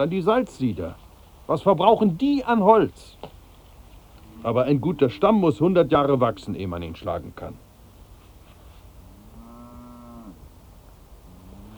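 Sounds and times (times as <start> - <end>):
speech: 0.0 - 3.4, 4.4 - 7.6
steady noise: 0.0 - 11.7
cow mooing in a herd of cattle being driven: 9.0 - 10.4, 11.3 - 11.7.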